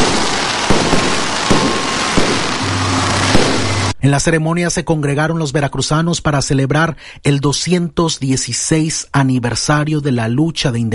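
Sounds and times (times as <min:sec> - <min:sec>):
fireworks bursting outdoors with sharp cracks and pops: 0:00.0 - 0:03.9
low rumble: 0:02.6 - 0:04.0
speech: 0:04.0 - 0:10.9.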